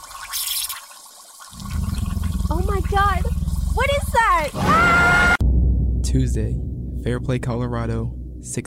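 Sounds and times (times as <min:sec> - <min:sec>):
water gushing from a garden hose in Fairplay Colorado: 0:00.0 - 0:04.6
speech: 0:02.8 - 0:05.3, 0:06.1 - 0:08.6.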